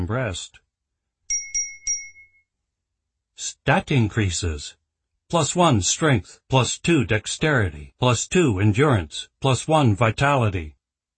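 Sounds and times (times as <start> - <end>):
speech: 0.0 - 0.6, 3.4 - 10.8
notification chime for skill and stat increases: 1.3 - 2.4.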